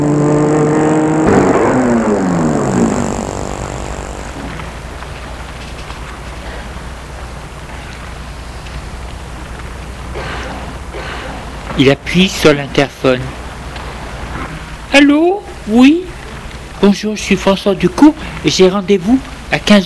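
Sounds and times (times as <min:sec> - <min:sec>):
car engine slowing and stopping in front of an entrance: 0:00.0 - 0:10.9
speech: 0:11.8 - 0:13.4, 0:14.9 - 0:16.0, 0:16.8 - 0:19.8.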